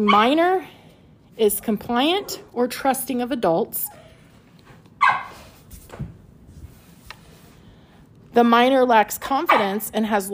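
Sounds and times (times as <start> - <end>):
speech: 0.0 - 0.8, 1.4 - 4.0, 8.4 - 10.3
low steady hum: 0.0 - 10.3
dog barking: 5.0 - 5.4.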